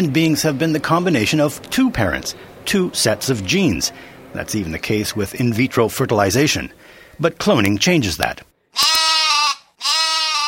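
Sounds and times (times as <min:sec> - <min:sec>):
speech: 0:00.0 - 0:08.9
sheep bleating: 0:08.8 - 0:10.4.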